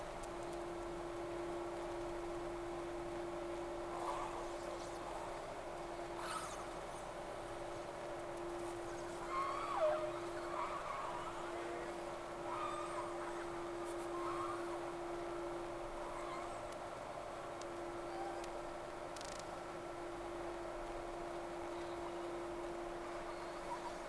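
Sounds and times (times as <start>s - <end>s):
steady hum and hiss: 0.0s - 24.0s
whale calls: 3.9s - 5.4s, 6.0s - 6.8s, 8.8s - 16.7s, 17.9s - 18.6s.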